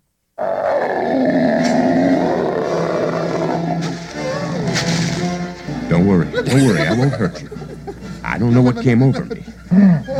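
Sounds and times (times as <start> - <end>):
deep monster growl in a film clip: 0.4 - 4.7
laughter: 6.2 - 10.1
speech: 6.5 - 10.1.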